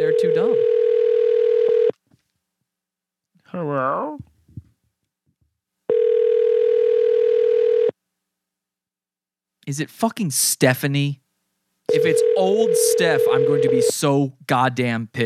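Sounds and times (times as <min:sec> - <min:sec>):
telephone ringback tone on an outgoing call: 0:00.0 - 0:01.9, 0:05.9 - 0:07.9, 0:11.9 - 0:13.9
speech: 0:09.7 - 0:11.2, 0:12.0 - 0:15.2.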